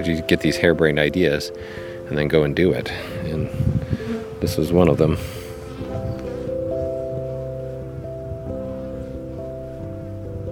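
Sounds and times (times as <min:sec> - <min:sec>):
speech: 0:00.0 - 0:05.4
bees buzzing around the edge of a hive: 0:02.8 - 0:10.0.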